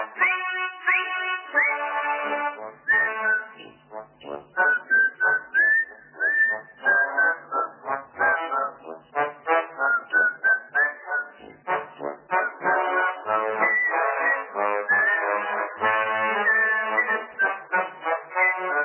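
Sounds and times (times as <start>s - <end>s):
people whistling a lively march-like tune together in cold weather: 0.2s - 2.3s, 2.8s - 3.7s, 4.6s - 8.7s, 9.6s - 11.6s, 12.3s - 12.8s, 13.5s - 17.8s, 18.4s - 18.8s.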